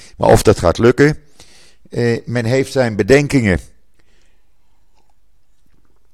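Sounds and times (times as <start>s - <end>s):
speech: 0.2s - 1.3s, 1.9s - 3.7s
person sipping water: 4.0s - 6.1s.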